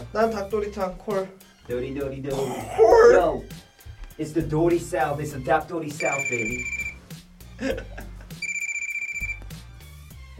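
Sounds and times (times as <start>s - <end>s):
low music: 0.0s - 10.3s
speech: 0.1s - 3.6s, 4.2s - 6.8s, 7.6s - 8.0s
telephone ringing with a rapid trilling bell: 6.0s - 7.0s, 8.4s - 9.6s
laughter: 7.6s - 8.4s.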